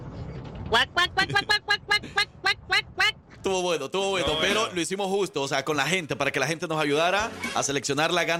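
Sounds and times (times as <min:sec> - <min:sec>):
speech: 0:00.7 - 0:01.6, 0:03.5 - 0:08.3
person imitating duck quacks: 0:00.7 - 0:03.2.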